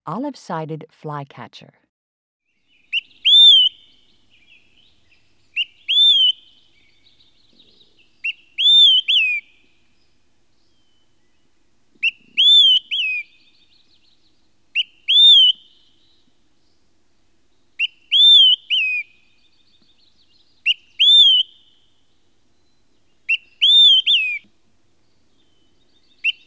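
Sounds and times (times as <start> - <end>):
Olive-sided Flycatcher calling: 2.7 - 26.4.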